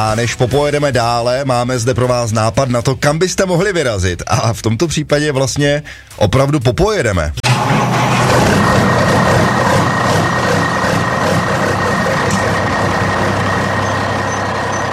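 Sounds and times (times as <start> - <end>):
speech: 0.0 - 8.1
large diesel truck engine idling: 7.5 - 14.9.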